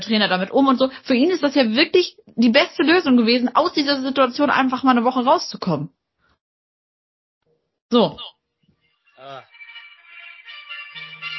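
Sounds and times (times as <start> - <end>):
speech: 0.0 - 6.0, 7.9 - 8.4, 9.2 - 9.5
phone ringing with a warbling electronic tone: 9.1 - 11.3.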